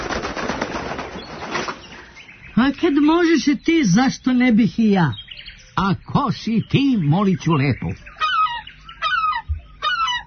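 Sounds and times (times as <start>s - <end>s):
speech: 2.6s - 5.2s, 5.8s - 8.1s
herring gull calling: 7.1s - 10.2s.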